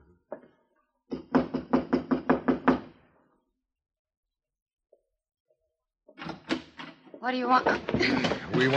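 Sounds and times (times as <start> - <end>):
firm loud knocks on the wooden door of a room: 1.1 - 2.9
speech: 7.2 - 8.7.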